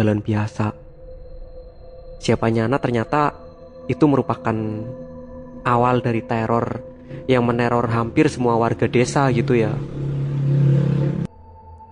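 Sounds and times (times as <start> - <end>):
speech: 0.0 - 0.8, 2.2 - 10.1
thin steady tone: 0.7 - 11.8
motorbike engine roaring past outside: 8.1 - 11.3.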